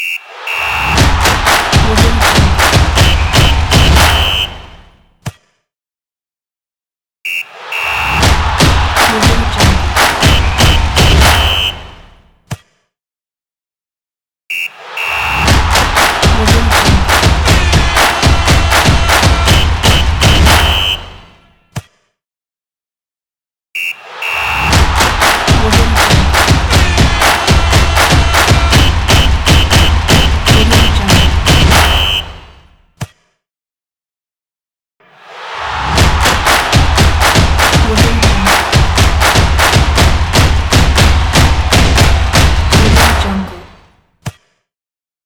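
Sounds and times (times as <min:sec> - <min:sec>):
stadium football stomp logo: 0:00.4 - 0:05.0, 0:07.3 - 0:12.3, 0:14.7 - 0:21.5, 0:23.8 - 0:32.8, 0:35.3 - 0:43.9.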